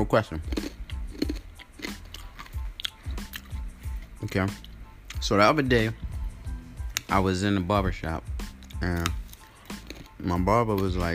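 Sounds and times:
speech: 0.0s - 0.6s, 4.2s - 6.0s, 7.1s - 9.2s, 10.2s - 11.1s
moist crunchy chewing of a crispy pancake: 0.4s - 4.8s, 8.5s - 11.0s.

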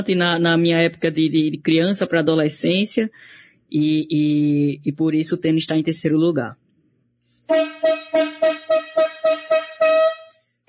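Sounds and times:
speech: 0.0s - 6.6s, 7.5s - 8.6s
brassy horn honks: 7.5s - 10.4s.

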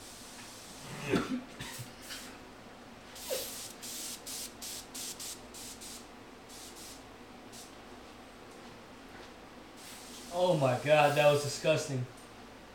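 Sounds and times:
speech: 1.1s - 1.8s, 10.6s - 12.2s
aerosol can spraying: 3.2s - 7.0s, 9.8s - 11.4s.

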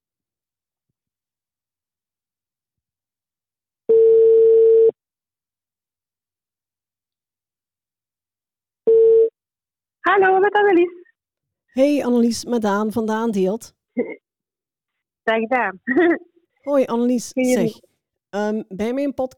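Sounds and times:
telephone ringing tone while placing a call to a local trader: 3.9s - 5.0s, 8.9s - 9.3s
speech: 10.1s - 11.0s, 11.7s - 14.2s, 15.2s - 19.3s.

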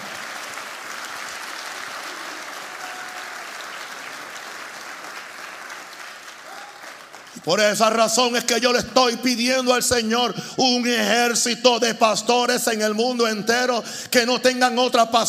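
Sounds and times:
congregation applauding loudly: 0.0s - 8.0s
speech: 7.4s - 15.2s.

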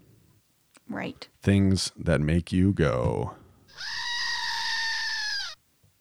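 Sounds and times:
speech: 0.9s - 3.9s
goat screaming: 3.7s - 5.6s.

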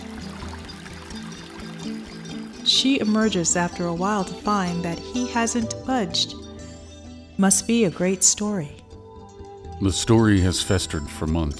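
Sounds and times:
water running from a bathroom tap: 0.0s - 3.5s
speech: 1.9s - 6.4s, 7.4s - 8.8s, 9.8s - 11.5s.

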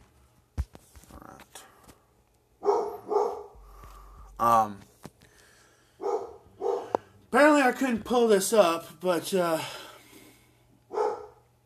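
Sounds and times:
dog barking: 2.6s - 3.6s, 6.0s - 7.0s, 10.9s - 11.4s
speech: 4.4s - 4.9s, 7.3s - 9.8s.

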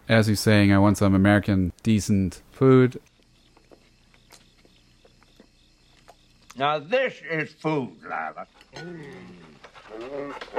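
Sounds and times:
speech: 0.1s - 3.1s, 6.6s - 10.5s
dog with drawn-out wavering whines and grumbles: 8.0s - 10.5s.

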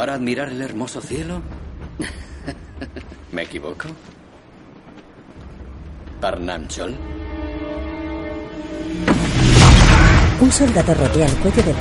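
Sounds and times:
speech: 0.0s - 4.2s, 6.2s - 7.2s, 8.6s - 9.4s, 10.4s - 11.7s
wartime train carriage rolling along: 0.0s - 11.7s
laughter: 2.0s - 3.3s.

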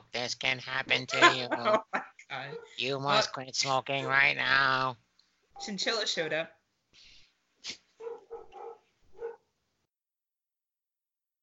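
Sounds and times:
speech: 0.1s - 5.0s, 5.6s - 6.6s, 7.6s - 7.8s
laughter: 1.1s - 2.2s
dog barking: 2.5s - 2.9s, 8.0s - 9.5s.

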